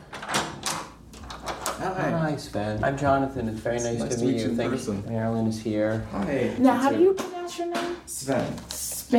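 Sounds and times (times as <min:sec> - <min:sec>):
hotel room door opening with clicks and rattling: 0:00.0 - 0:01.9
speech: 0:01.8 - 0:09.1.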